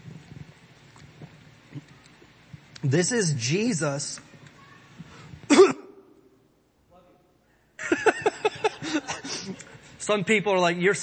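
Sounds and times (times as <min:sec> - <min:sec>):
speech: 0:02.8 - 0:04.3, 0:10.1 - 0:11.0
cough into a microphone during a live stream: 0:05.5 - 0:06.0
laughter: 0:07.8 - 0:09.9.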